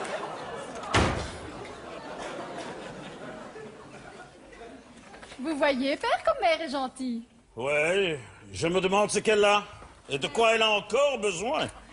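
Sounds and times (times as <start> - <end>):
laughter: 0.0 - 5.2
door slamming shut: 0.8 - 1.6
speech: 5.4 - 11.8.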